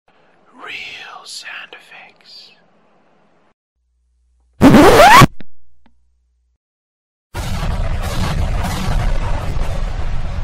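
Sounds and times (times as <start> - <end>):
record needle scratching across record: 4.6 - 5.4.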